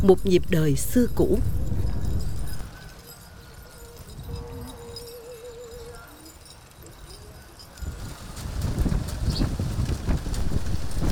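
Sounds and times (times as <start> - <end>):
speech: 0.0 - 1.6
wind rumble: 0.0 - 5.1, 7.8 - 11.0
hooves of a horse pulling a cart clip-clopping on a road in the Seven Mountains area of Vietnam: 0.0 - 11.0.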